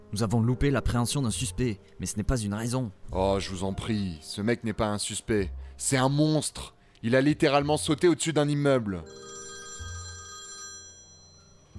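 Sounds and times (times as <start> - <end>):
speech: 0.1 - 9.4
telephone ringing with bright buzzing bell tone: 9.0 - 11.7.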